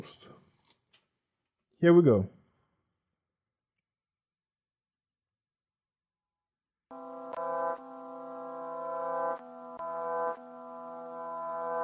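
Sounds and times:
speech: 0:00.0 - 0:00.3, 0:01.8 - 0:02.4
loud sustained horn-like chord in a hip-hop song intro: 0:06.9 - 0:11.8.

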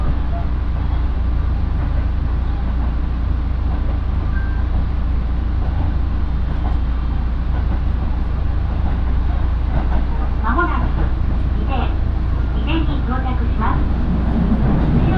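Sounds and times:
local train wheels and motor rumbling: 0:00.0 - 0:15.1.

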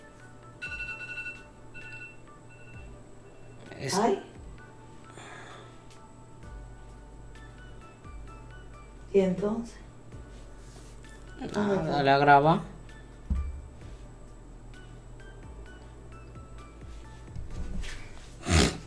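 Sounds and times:
phone alarm ringing with bright electronic tones: 0:00.4 - 0:03.7
speech: 0:03.8 - 0:04.3, 0:09.2 - 0:09.8, 0:11.4 - 0:12.7.

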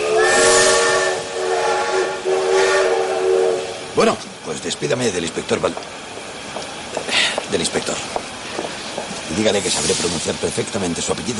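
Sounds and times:
train whistle of a waiting train in Madrid: 0:00.0 - 0:03.9
rumbling rail noise from a waiting train in Madrid: 0:00.0 - 0:11.3
speech: 0:04.0 - 0:06.0, 0:09.4 - 0:11.3.

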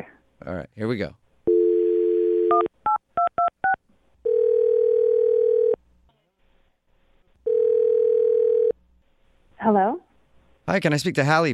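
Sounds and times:
speech: 0:00.0 - 0:01.2, 0:09.7 - 0:10.0, 0:10.7 - 0:11.5
telephone dial tone: 0:01.5 - 0:02.7, 0:04.3 - 0:05.8, 0:07.5 - 0:08.7.

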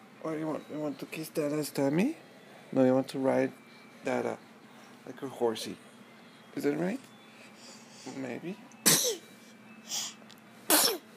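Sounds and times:
speech: 0:00.2 - 0:04.4, 0:05.0 - 0:05.9, 0:06.6 - 0:07.1, 0:08.0 - 0:09.2
person sneezing: 0:08.9 - 0:09.2.

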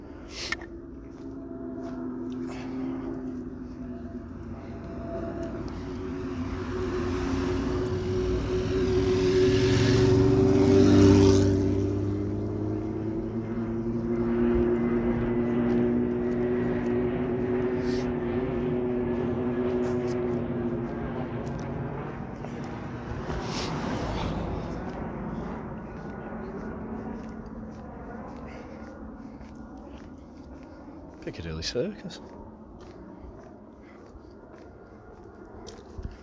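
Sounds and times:
large aeroplane droning overhead: 0:00.0 - 0:36.2
fast car rushing past: 0:05.0 - 0:25.8
speech: 0:31.6 - 0:32.4.

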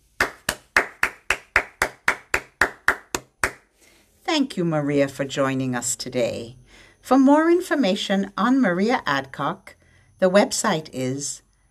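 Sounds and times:
single person clapping hands: 0:00.2 - 0:03.7
speech: 0:04.3 - 0:11.4.

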